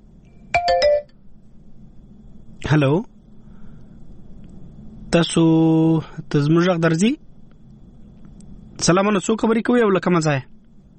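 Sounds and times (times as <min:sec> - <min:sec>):
telephone electronic ringtone for a call-in caller: 0:00.5 - 0:01.1
speech: 0:02.7 - 0:03.1, 0:05.1 - 0:07.2, 0:08.8 - 0:10.5.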